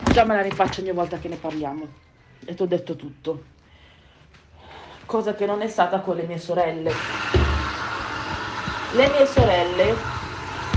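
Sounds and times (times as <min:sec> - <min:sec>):
speech: 0:00.2 - 0:03.6, 0:05.1 - 0:07.4, 0:08.9 - 0:10.2
washing machine churning with low rumble and hiss: 0:06.9 - 0:10.7.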